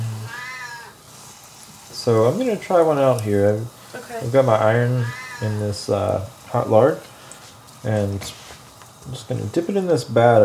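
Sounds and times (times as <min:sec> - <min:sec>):
cat meowing with a rising then falling tone: 0:00.2 - 0:01.0, 0:05.0 - 0:05.6
speech: 0:02.0 - 0:07.1, 0:07.8 - 0:08.4, 0:09.0 - 0:10.4.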